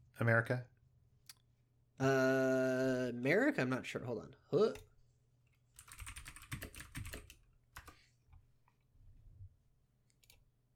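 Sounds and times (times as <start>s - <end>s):
speech: 0.2s - 0.7s, 2.0s - 4.9s
typing on a computer keyboard: 5.8s - 8.0s.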